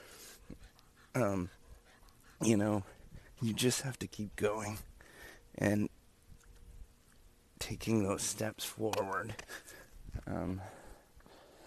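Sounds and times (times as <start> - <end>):
dog panting while being walked: 0.0 - 3.8
speech: 1.2 - 1.6, 2.4 - 4.9, 5.6 - 6.0, 7.7 - 10.8.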